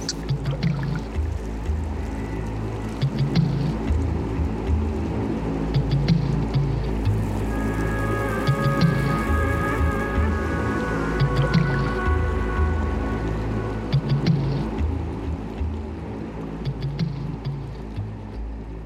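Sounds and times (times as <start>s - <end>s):
musical track built from water sounds from an album of nature recordings: 0.0s - 18.8s.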